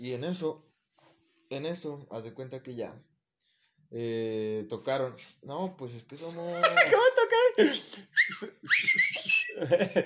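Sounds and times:
speech: 0:00.0 - 0:00.7, 0:01.5 - 0:03.1, 0:03.9 - 0:10.0
laughter: 0:06.3 - 0:10.0
people whistling: 0:07.7 - 0:09.8.

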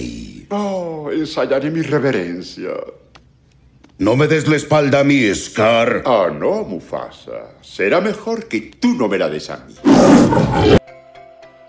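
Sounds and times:
speech: 0:00.5 - 0:03.0, 0:04.0 - 0:10.8
lion roaring: 0:09.8 - 0:10.8.

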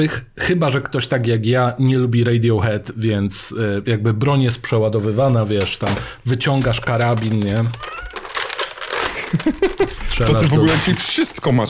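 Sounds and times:
speech: 0:00.0 - 0:08.0, 0:09.3 - 0:11.6
crinkly rustling: 0:04.9 - 0:11.6
domestic cat meowing: 0:07.6 - 0:08.6
laughter: 0:09.0 - 0:10.5.

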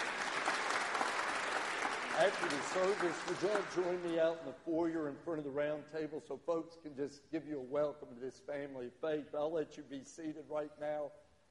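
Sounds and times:
church audience applause: 0:00.0 - 0:04.2
speech: 0:02.2 - 0:11.2.

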